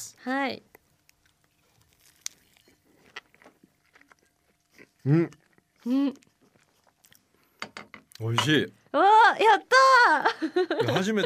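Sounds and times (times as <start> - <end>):
speech: 0.0 - 0.7, 5.0 - 6.3, 8.2 - 11.2
biting and chewing a crisp millefeuille pastry: 0.7 - 7.5
laughter: 10.2 - 11.2.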